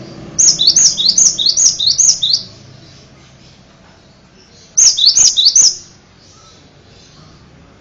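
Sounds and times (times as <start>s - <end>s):
bird song of rapid high-pitched descending whistled notes: 0.4s - 2.6s, 4.7s - 5.9s.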